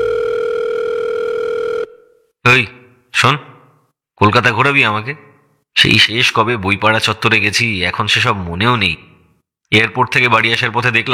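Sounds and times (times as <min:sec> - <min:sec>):
telephone call tone: 0:00.0 - 0:02.3
speech: 0:02.6 - 0:03.5, 0:04.2 - 0:09.1, 0:09.7 - 0:11.1.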